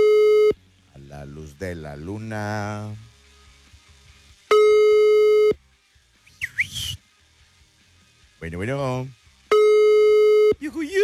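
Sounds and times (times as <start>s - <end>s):
telephone busy-signal tone: 0.0s - 0.6s, 4.5s - 5.6s, 9.5s - 10.6s
speech: 1.6s - 3.1s, 8.4s - 9.2s, 10.6s - 11.0s.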